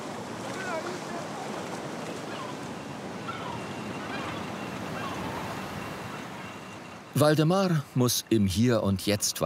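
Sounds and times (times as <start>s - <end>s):
sea surf rushing as oxen wade in: 0.0s - 8.1s
wind: 0.0s - 9.4s
faint higher calls: 2.1s - 7.2s
speech: 7.2s - 9.4s.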